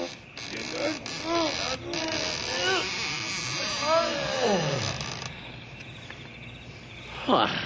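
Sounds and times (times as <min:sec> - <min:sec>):
heavy big doors of a large building in a ghost town creaking open: 0:00.0 - 0:05.4.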